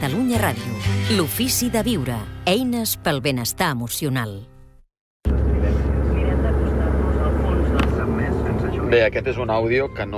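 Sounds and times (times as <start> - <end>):
speech: 0.0 - 4.5, 8.9 - 10.1
road and engine noise in the cabin of a moving car arriving in Vic: 5.3 - 10.1.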